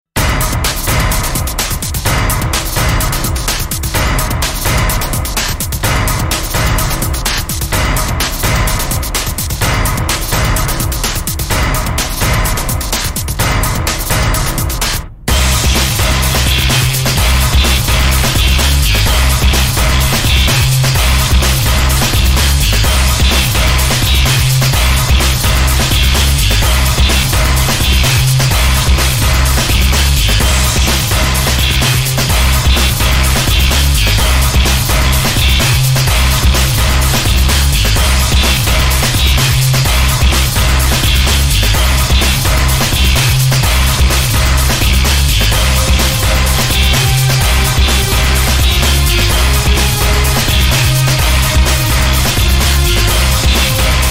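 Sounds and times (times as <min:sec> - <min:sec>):
video game boss theme music: 0:00.2 - 0:54.0.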